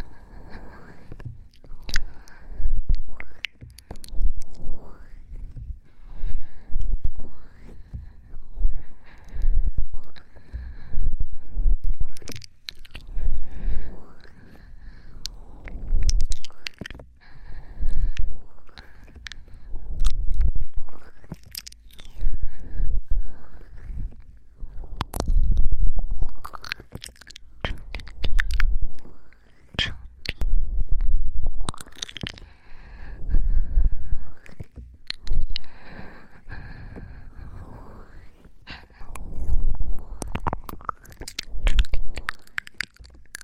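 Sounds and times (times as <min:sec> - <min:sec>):
soft wet mouth clicks and smacks: 0:00.0 - 0:05.6, 0:11.8 - 0:22.6, 0:25.0 - 0:30.6, 0:31.5 - 0:32.7, 0:34.3 - 0:43.4
close breathing at the ear: 0:00.0 - 0:43.4.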